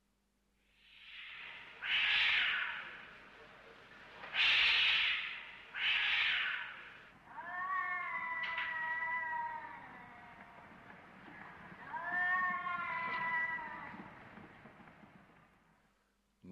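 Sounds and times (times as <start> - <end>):
cats caterwauling and yowling: 1.0 - 3.2, 4.2 - 14.2
short sharp cat meows: 1.3 - 3.0, 4.3 - 10.6, 11.4 - 14.2.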